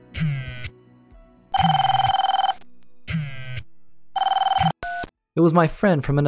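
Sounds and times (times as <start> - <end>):
phone ringing with electronic trill: 1.6 - 2.7, 4.2 - 5.1
speech: 5.4 - 6.2.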